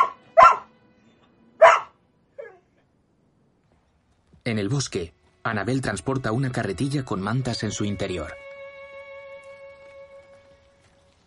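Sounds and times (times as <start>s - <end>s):
dog barking inside a house behind a glass door: 0.0s - 0.7s, 1.6s - 2.7s
speech: 4.4s - 8.5s.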